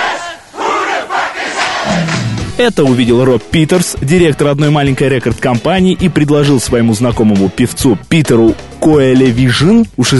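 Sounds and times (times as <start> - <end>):
crowd in a cafe in the Netherlands shouting along to a song chorus: 0.0 - 2.2
music turned down: 1.9 - 10.1
speech: 2.6 - 10.1.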